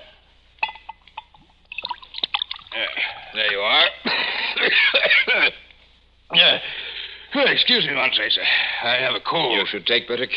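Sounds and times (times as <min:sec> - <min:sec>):
sherry poured into a glass: 0:01.7 - 0:02.8
speech: 0:02.8 - 0:05.6, 0:06.3 - 0:10.3.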